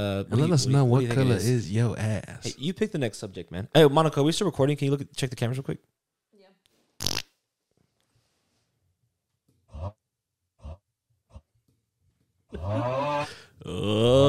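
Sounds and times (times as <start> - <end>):
speech: 0.0 - 6.0, 12.6 - 14.2
cartoonish fart sound effect: 7.0 - 7.3.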